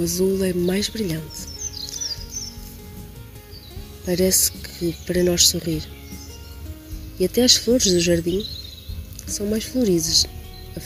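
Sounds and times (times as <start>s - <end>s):
speech: 0.0s - 1.6s, 4.0s - 6.0s, 7.2s - 8.6s, 9.3s - 10.8s
thin high bird chirps: 0.1s - 10.8s.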